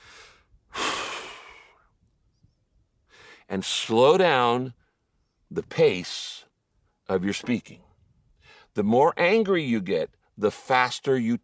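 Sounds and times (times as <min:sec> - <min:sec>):
deep breath: 0:00.0 - 0:01.9, 0:03.1 - 0:03.5, 0:08.4 - 0:08.7
speech: 0:03.5 - 0:04.8, 0:05.5 - 0:06.5, 0:07.1 - 0:07.9, 0:08.8 - 0:11.4.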